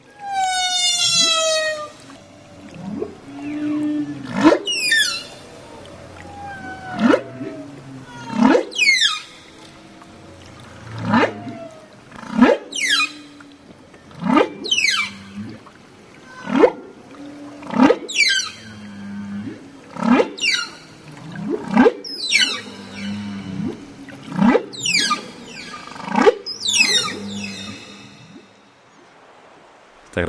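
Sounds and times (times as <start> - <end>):
humpback whale song with moaning calls and whoops: 0.0 - 29.0.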